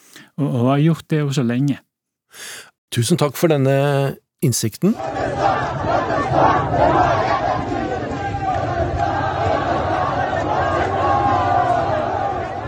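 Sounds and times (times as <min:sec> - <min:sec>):
speech: 0:00.4 - 0:07.9
huge crowd of protesters in Baluchistan Iran chanting slogans in unison: 0:05.0 - 0:12.6.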